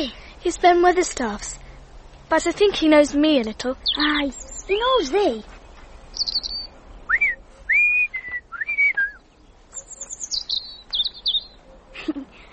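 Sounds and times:
speech: 0.0s - 1.6s, 2.3s - 5.6s
robin calling with clear bright whistled phrases: 3.8s - 5.1s, 5.9s - 11.9s.

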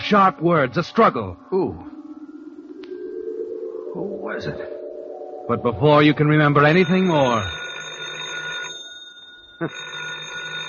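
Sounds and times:
speech: 0.1s - 1.9s, 4.0s - 4.8s, 5.5s - 7.6s, 9.6s - 9.9s
telephone ringing with a trilling bell: 6.1s - 10.6s.

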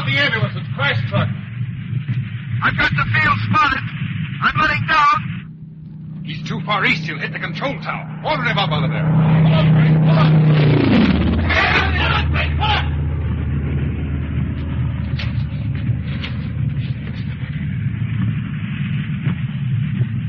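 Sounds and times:
military plane engine sputtering as it runs low on fuel: 0.0s - 20.2s
speech: 0.1s - 1.5s, 2.6s - 5.3s, 6.3s - 10.9s.

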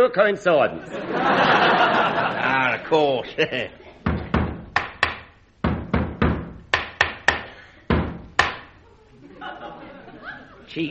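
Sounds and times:
speech: 0.0s - 3.8s
laughter: 0.8s - 4.0s, 9.0s - 10.7s
knocking on a door: 4.0s - 8.7s
hammering: 4.0s - 8.8s.

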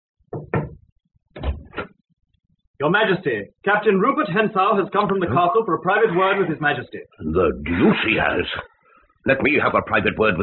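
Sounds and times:
soft knocks on a door: 0.3s - 0.8s
speech: 2.8s - 10.4s.

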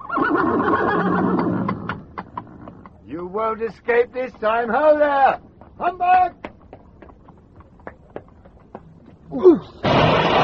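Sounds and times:
horse neighing in the Limehouse district: 0.0s - 2.9s
speech: 3.2s - 6.4s, 9.3s - 10.4s.

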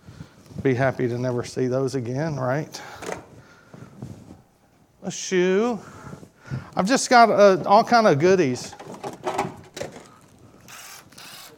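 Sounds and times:
speech: 0.6s - 3.0s, 5.1s - 6.0s, 6.8s - 8.8s
small impact drill whirring: 10.6s - 11.5s.

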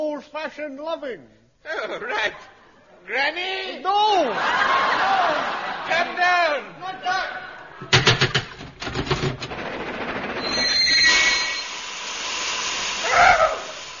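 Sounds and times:
speech: 0.2s - 7.4s
laughter: 4.1s - 7.9s
steam train hiss and rumble: 9.4s - 13.9s
high whistle-like tone: 10.4s - 13.9s
steam train chugging with breathy puffs: 10.5s - 13.9s.

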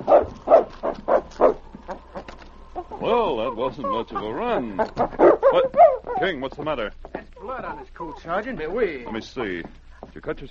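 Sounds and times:
dog barking at a door: 0.0s - 1.7s, 5.0s - 6.3s
speech: 3.2s - 7.0s, 7.6s - 10.4s.

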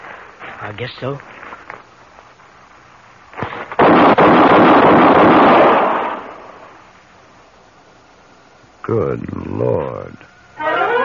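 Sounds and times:
speech: 0.6s - 1.4s, 8.9s - 10.3s
gunshots fired from a gun: 3.4s - 6.6s.

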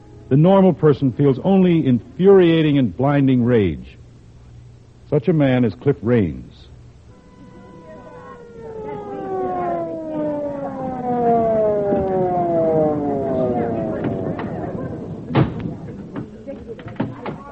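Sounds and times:
speech: 0.3s - 4.0s, 5.1s - 6.7s
ambulance siren wailing: 7.1s - 16.0s.

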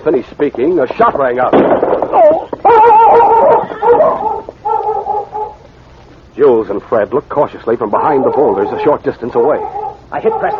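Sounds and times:
speech: 0.0s - 2.5s, 6.4s - 10.5s
dog running around whimpering and yelping excitedly: 2.1s - 5.6s, 8.2s - 10.5s.

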